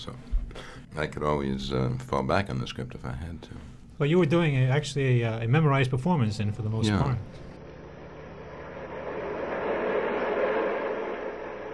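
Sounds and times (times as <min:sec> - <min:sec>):
speech: 0:00.0 - 0:00.3, 0:00.9 - 0:07.4
subway train rumbling: 0:08.5 - 0:11.7.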